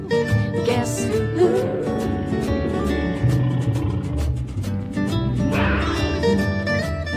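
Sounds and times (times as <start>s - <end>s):
speech: 0.0s - 1.8s
tiger growling and roaring: 1.2s - 6.6s.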